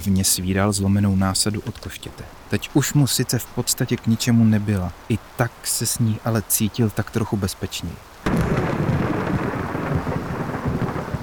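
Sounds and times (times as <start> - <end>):
speech: 0.0 - 8.8
faint rain-like hiss: 0.0 - 11.2
deep roll of thunder during a storm: 8.2 - 11.2.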